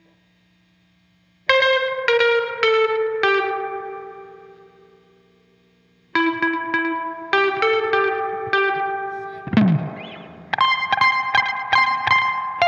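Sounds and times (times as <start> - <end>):
guitar overdub: 1.5 - 5.0, 6.1 - 12.6.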